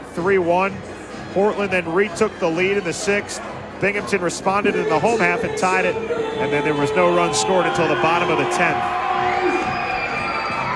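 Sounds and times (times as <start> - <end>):
speech: 0.2 - 9.0
ballpark crowd cheering and shouting: 4.6 - 10.7.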